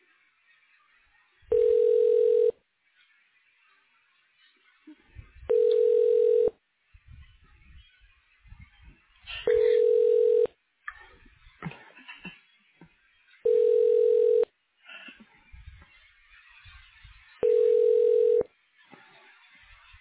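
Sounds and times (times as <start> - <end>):
telephone ringback tone during a call transfer to a doctor's office: 1.5 - 2.6, 5.5 - 6.5, 9.5 - 10.5, 13.4 - 14.5, 17.4 - 18.5.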